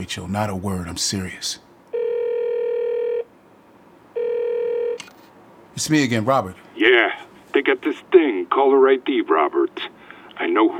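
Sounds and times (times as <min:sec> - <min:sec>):
speech: 0:00.0 - 0:01.7, 0:05.8 - 0:10.7
ringing tone of an outgoing telephone call on speakerphone: 0:01.9 - 0:03.3, 0:04.1 - 0:05.1.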